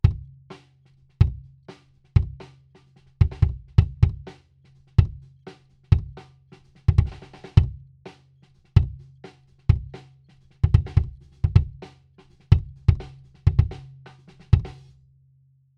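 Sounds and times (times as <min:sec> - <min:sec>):
close kick drum: 0:00.0 - 0:00.4, 0:01.2 - 0:01.5, 0:02.2 - 0:02.4, 0:03.2 - 0:04.3, 0:05.0 - 0:05.2, 0:05.9 - 0:06.2, 0:06.9 - 0:07.8, 0:08.8 - 0:09.0, 0:09.7 - 0:09.9, 0:10.6 - 0:11.8, 0:12.5 - 0:13.8, 0:14.5 - 0:14.8.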